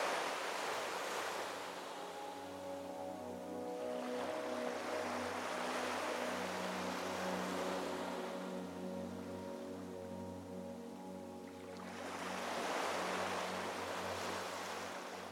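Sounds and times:
waves washing in broad hissing swells: 0.0s - 10.0s, 10.8s - 15.3s.

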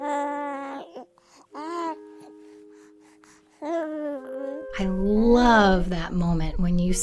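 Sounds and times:
newborn baby crying: 0.0s - 2.3s, 3.6s - 4.7s
speech: 4.8s - 7.0s.

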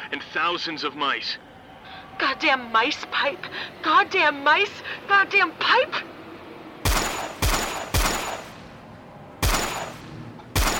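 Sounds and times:
speech: 0.1s - 1.5s, 2.2s - 6.1s
gunshots in a facility: 6.8s - 8.7s, 9.4s - 10.7s.

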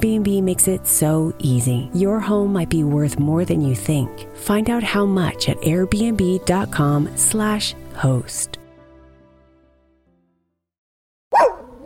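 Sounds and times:
speech: 0.0s - 8.6s
dog barking: 11.3s - 11.8s.

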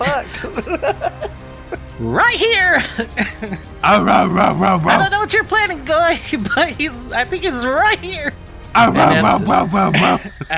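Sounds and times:
laughter: 0.0s - 5.2s, 6.2s - 6.9s, 8.8s - 10.5s
speech: 0.4s - 1.3s, 2.0s - 10.5s
person imitating dog barking: 3.9s - 5.1s, 8.8s - 10.2s.

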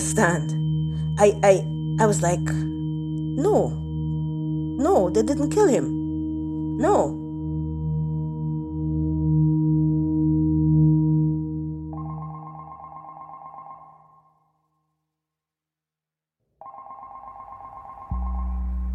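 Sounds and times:
speech: 0.0s - 0.6s, 1.2s - 2.7s, 3.4s - 3.8s, 4.8s - 6.0s, 6.8s - 7.2s
low droning tone: 0.0s - 12.2s, 18.1s - 18.9s
telephone ringing with electronic trill: 12.0s - 14.4s, 16.6s - 18.5s.

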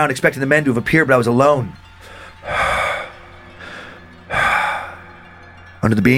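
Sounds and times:
speech: 0.0s - 1.8s, 5.8s - 6.1s
loud raspy wheezing breaths: 1.8s - 5.8s.

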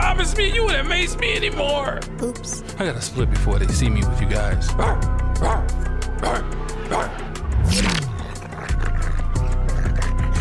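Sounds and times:
speech: 0.1s - 7.1s
person imitating dog barks: 4.8s - 7.1s
person imitating a dog whimper: 8.0s - 10.3s.

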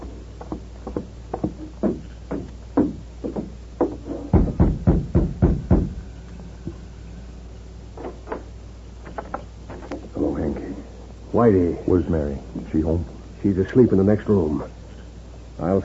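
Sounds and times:
knocking on a wooden door: 0.4s - 6.0s
speech: 11.4s - 14.8s, 15.6s - 15.8s.

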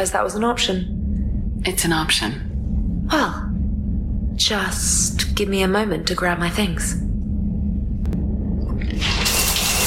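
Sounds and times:
speech: 0.0s - 1.0s, 1.6s - 2.5s, 3.1s - 3.5s, 4.4s - 7.1s
low rumble: 0.0s - 9.8s
hot shower water spraying: 8.9s - 9.8s.

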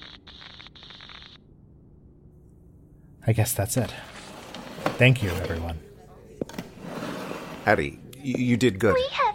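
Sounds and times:
radio static crackling from solar interference: 0.0s - 1.4s
speech: 3.2s - 4.2s, 5.0s - 5.9s, 7.7s - 9.2s.

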